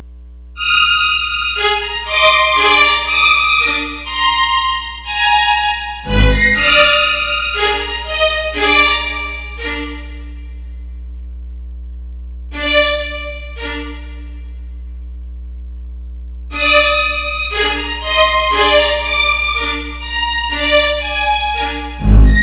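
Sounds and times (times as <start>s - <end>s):
quartet playing: 0.6s - 10.2s, 16.5s - 22.4s.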